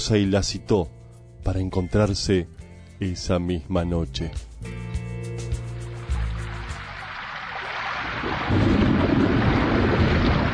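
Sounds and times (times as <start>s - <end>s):
speech: 0.0s - 4.9s
low rumbling: 5.8s - 10.5s
heavy rain pouring: 7.5s - 10.5s.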